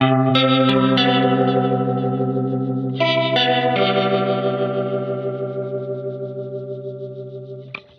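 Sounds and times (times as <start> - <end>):
alternative rock guitar sample: 0.0 - 7.9.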